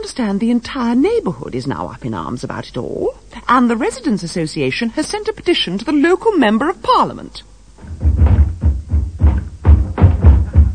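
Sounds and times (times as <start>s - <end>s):
speech: 0.1s - 7.5s
thumping on a front door: 7.8s - 10.7s.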